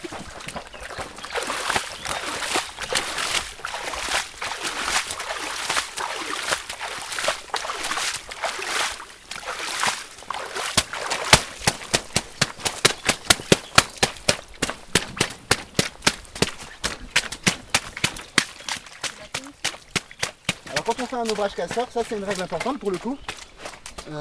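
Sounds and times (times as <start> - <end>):
feet stamping and packing mud in shallow river water: 0.0 - 24.1
flowing river water rushing: 1.4 - 14.3
speech: 21.3 - 23.3.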